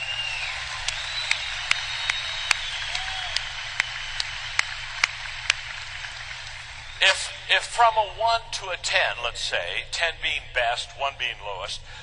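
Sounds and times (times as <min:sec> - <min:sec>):
audience applauding: 0:00.0 - 0:07.6
speech: 0:07.1 - 0:12.0.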